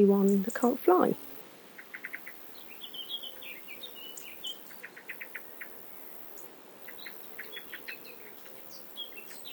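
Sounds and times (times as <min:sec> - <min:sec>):
speech: 0:00.0 - 0:01.3
common green, field and meadow grasshoppers chirping in a meadow: 0:00.0 - 0:01.4
faint birdsong twittering: 0:00.0 - 0:09.5.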